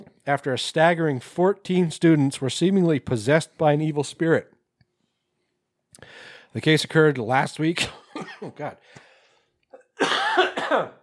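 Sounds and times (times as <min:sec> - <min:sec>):
speech: 0:00.2 - 0:04.5, 0:06.0 - 0:09.0, 0:10.0 - 0:11.0
person coughing: 0:07.8 - 0:08.8, 0:09.7 - 0:11.0.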